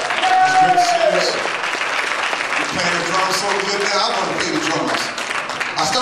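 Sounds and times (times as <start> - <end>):
scattered cheers: 0.0 - 1.5
crowd applauding musicians: 0.0 - 5.9
speech: 5.8 - 5.9.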